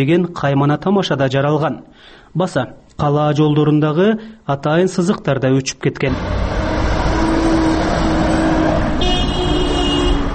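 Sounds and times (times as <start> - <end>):
speech: 0.0 - 6.6
car traffic at a city street intersection in Osh: 6.0 - 10.3
car horn at a city street intersection: 7.2 - 10.3.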